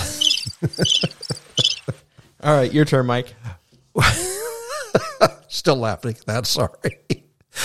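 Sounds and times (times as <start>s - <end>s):
crickets chirping: 0.0s - 1.9s
speech: 0.6s - 1.2s, 2.4s - 3.4s, 5.2s - 7.1s.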